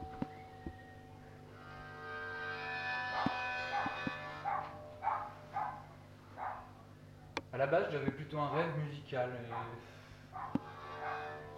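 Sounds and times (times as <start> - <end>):
low hum: 0.0 - 11.5
dogs howling: 3.1 - 6.8, 9.5 - 11.5
dogs barking: 3.2 - 7.4, 9.5 - 11.5
speech: 7.6 - 10.6.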